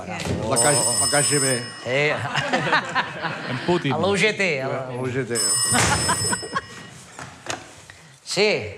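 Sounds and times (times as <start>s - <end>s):
speech: 0.0s - 6.5s, 8.4s - 8.7s
telephone bell ringing: 0.5s - 2.4s, 5.4s - 7.2s
laughter: 2.0s - 4.2s, 5.7s - 7.0s.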